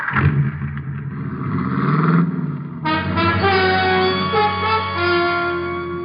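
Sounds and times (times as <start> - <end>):
car engine revving and pulling away: 0.0 - 6.0
loud held musical chord: 2.8 - 6.0.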